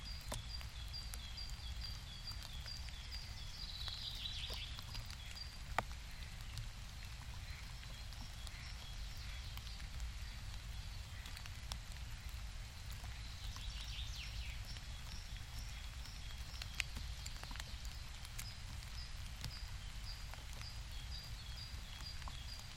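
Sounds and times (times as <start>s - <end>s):
steady rain: 0.0s - 22.7s.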